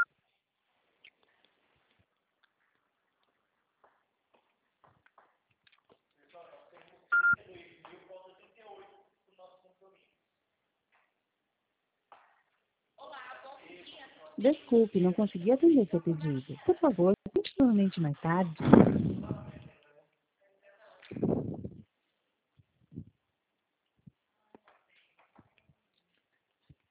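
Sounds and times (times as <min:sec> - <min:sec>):
short loud electronic beep from a phone voicemail system: 0:07.2 - 0:07.4
voices on the phone line: 0:14.4 - 0:18.6
speech: 0:14.4 - 0:19.4.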